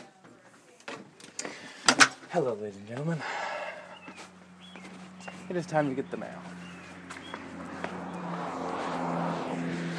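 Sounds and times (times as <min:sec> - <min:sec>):
speech: 0:02.3 - 0:03.4, 0:05.5 - 0:06.5
car driving past with low engine hum and road rush: 0:03.2 - 0:09.9.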